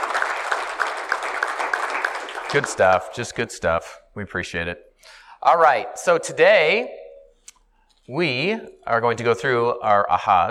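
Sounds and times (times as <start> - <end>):
audience applause: 0.0 - 3.4
speech: 2.5 - 7.0, 8.1 - 10.4.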